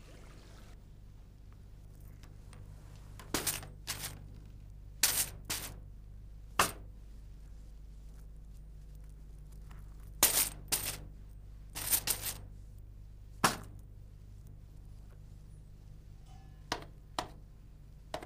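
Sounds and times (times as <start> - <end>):
low steady hum: 0.0 - 18.2
coins clinking and dropping: 3.4 - 4.2, 10.2 - 11.0, 11.8 - 12.4.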